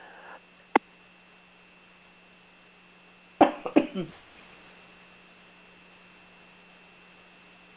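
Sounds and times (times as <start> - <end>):
faint low hum: 0.0 - 7.7
person coughing: 3.4 - 4.2.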